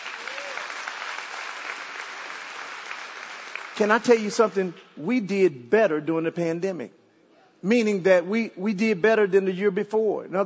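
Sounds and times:
crowd clapping: 0.0s - 4.6s
speech: 3.8s - 7.0s, 7.6s - 10.4s.

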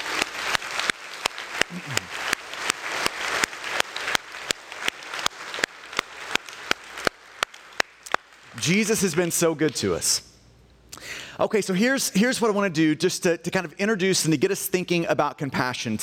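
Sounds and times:
large crowd applauding: 0.0s - 10.0s
speech: 1.7s - 2.2s, 8.6s - 10.3s, 11.4s - 16.0s.

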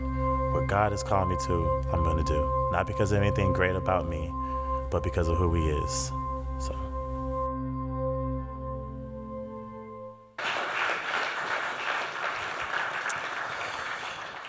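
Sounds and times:
sustained musical chord: 0.0s - 10.4s
speech: 0.6s - 6.9s
crowd applauding: 10.4s - 14.4s.

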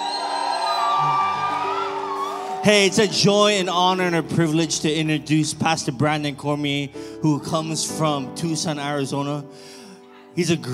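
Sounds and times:
large audience cheering and screaming: 0.0s - 3.9s
speech: 2.6s - 9.8s, 10.4s - 10.7s.

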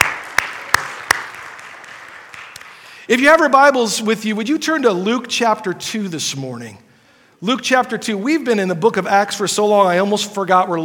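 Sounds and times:
hand claps at a church service: 0.0s - 3.0s
speech: 3.1s - 10.8s.

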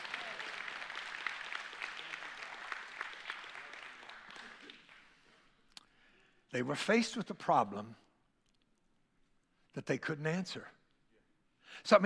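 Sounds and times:
room full of people applauding: 0.0s - 5.2s
speech: 6.5s - 8.0s, 9.8s - 10.8s, 11.8s - 12.0s.

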